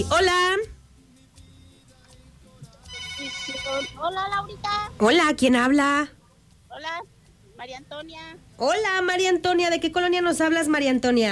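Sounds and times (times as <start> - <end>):
speech: 0.0 - 0.7, 3.7 - 11.3
phone ringing with an incoming WhatsApp call: 2.9 - 4.2.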